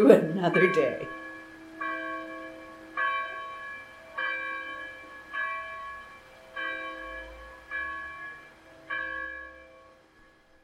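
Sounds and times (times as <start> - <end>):
church bells ringing: 0.0 - 10.6
speech: 0.1 - 1.2.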